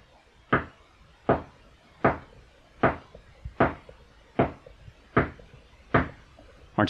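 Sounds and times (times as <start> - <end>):
firm knocking on a wooden door: 0.5 - 0.7, 1.3 - 6.2.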